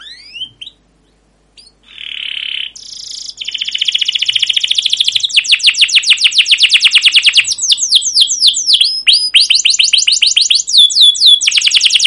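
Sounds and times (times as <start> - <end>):
canary song with long fast rolling trill and descending whistled notes: 0.0 - 12.0.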